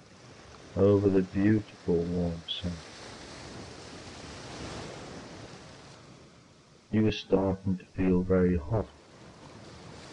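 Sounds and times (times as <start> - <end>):
ocean waves washing onto a warm sandy beach: 0.0 - 10.1
speech: 0.8 - 2.9, 6.9 - 9.0.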